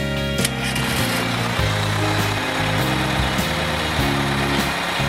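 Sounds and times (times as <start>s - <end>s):
school bus engine idling: 0.1s - 5.0s.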